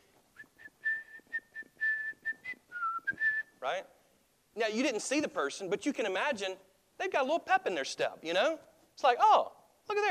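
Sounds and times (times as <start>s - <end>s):
person whistling a bright bouncy melody: 0.4s - 3.5s
speech: 3.6s - 4.0s, 4.6s - 10.1s.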